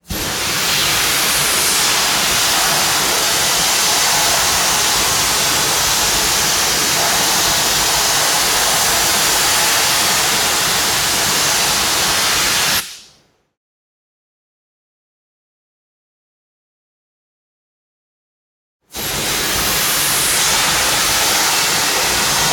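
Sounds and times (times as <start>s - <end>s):
industrial factory machine cutting steel: 0.4s - 12.8s, 19.3s - 22.5s.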